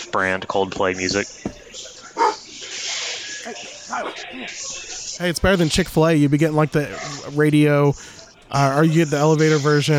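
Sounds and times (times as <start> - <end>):
speech: 0.1 - 1.9, 3.4 - 9.9
dog barking excitedly: 2.2 - 2.5.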